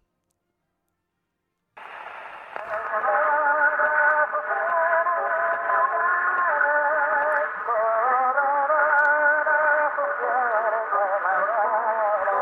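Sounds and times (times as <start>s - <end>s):
Italian tenor singing an anthem on an 1899 gramophone disc recording: 2.6s - 12.3s.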